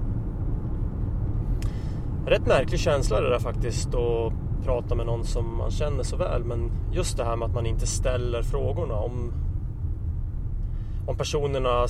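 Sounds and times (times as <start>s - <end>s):
road noise inside a moving car: 0.0s - 11.8s
speech: 2.3s - 9.4s, 11.1s - 11.8s.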